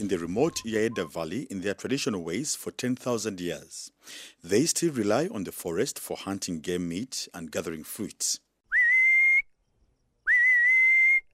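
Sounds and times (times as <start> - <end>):
speech: 0.0 - 8.4
person whistling to call honey-guiding birds in the Yaeda Valley: 0.4 - 1.2, 8.7 - 9.5, 10.3 - 11.3.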